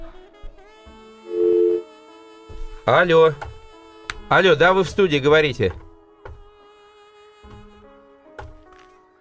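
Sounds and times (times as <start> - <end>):
telephone line tone after a dropped call into a studio phone-in: 1.3 - 1.8
speech: 2.9 - 3.5, 4.3 - 5.8.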